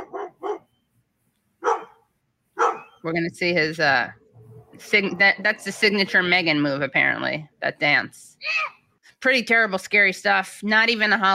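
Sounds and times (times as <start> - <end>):
dog barking: 0.0 - 0.7, 1.6 - 3.0
speech: 3.0 - 4.2, 4.8 - 11.3.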